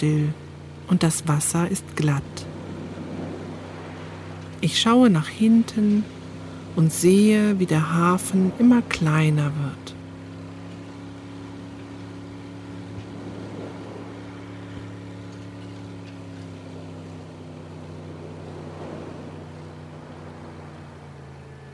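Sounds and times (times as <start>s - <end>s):
speech: 0.0s - 2.5s, 4.6s - 6.2s, 6.8s - 9.9s
motorboat engine motoring slowly out of harbour along a breakwater: 0.0s - 21.7s.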